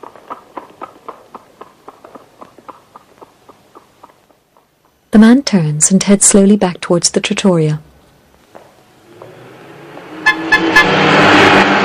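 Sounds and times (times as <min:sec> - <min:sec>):
speech: 0:05.2 - 0:07.9
convertible car engine approaching and passing: 0:08.7 - 0:11.8
convertible car horn toots: 0:10.2 - 0:11.0.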